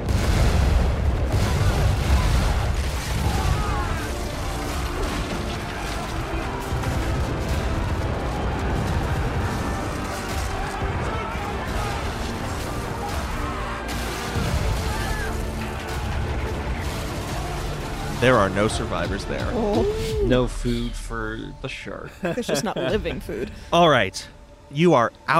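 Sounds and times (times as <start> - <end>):
crashing debris: 0.0 - 19.1
heavy cannon fire: 0.0 - 19.5
rumbling blasts: 0.0 - 21.8
speech: 18.2 - 25.3
laughter: 22.0 - 23.6.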